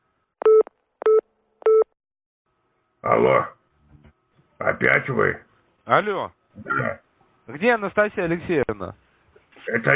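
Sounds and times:
telephone beeps while calling an ambulance: 0.4 - 1.9
speech: 3.0 - 3.6, 4.6 - 9.0, 9.6 - 9.9.

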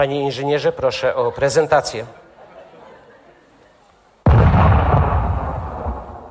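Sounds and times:
speech: 0.0 - 2.2
very powerful charge exploding: 4.3 - 6.3.

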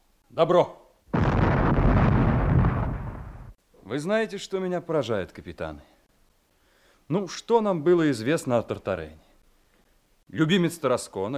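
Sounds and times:
speech: 0.3 - 0.8, 3.9 - 6.0, 7.1 - 9.2, 10.3 - 11.3
ceremonial cannon salute firing: 1.1 - 3.6.

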